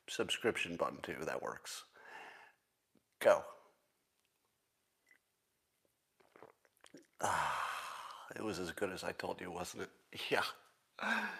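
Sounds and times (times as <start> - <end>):
speech: 0.1 - 1.9, 3.2 - 3.6, 7.2 - 7.6, 8.4 - 11.3
loud sustained slurping sip of a drink: 6.2 - 7.2
soft wet mouth clicks: 6.2 - 7.2.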